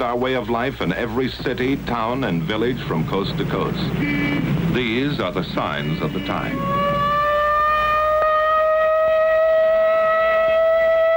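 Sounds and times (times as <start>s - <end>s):
speech: 0.0s - 7.0s
civil defense air raid siren wailing: 5.6s - 11.1s.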